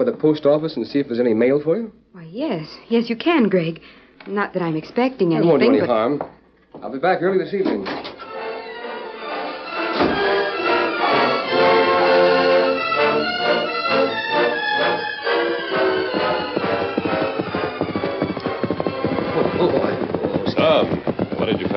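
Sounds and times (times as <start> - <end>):
speech: 0.0 - 8.0
loud full music: 8.2 - 20.9
horse hooves clip-clopping in a trotting rhythm: 12.9 - 21.7.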